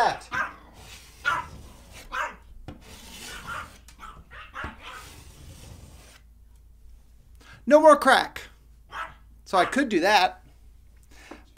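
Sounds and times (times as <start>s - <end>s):
dogs barking: 0.1s - 2.4s, 3.3s - 5.1s, 8.9s - 9.8s
scraping and rubbing noise: 0.3s - 6.3s
speech: 7.7s - 8.5s, 9.5s - 10.4s.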